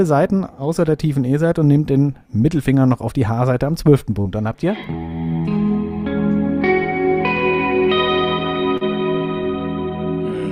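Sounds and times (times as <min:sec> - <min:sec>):
speech: 0:00.0 - 0:05.2
guitar chord strummed with heavy reverb: 0:04.8 - 0:10.5.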